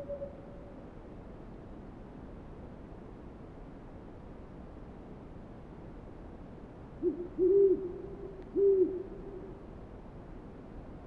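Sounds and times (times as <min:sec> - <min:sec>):
owl giving low steady hoot: 0:00.0 - 0:00.7, 0:07.0 - 0:09.5
faint background hiss: 0:00.0 - 0:11.0.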